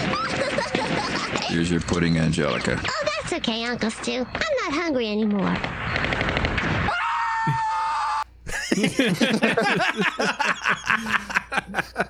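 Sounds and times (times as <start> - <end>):
laughter: 0.0 - 1.9, 8.5 - 12.0
speech: 1.5 - 6.7, 8.8 - 12.0
excited high-pitched shrieking and yelping: 6.8 - 8.2
person screaming: 6.9 - 8.2.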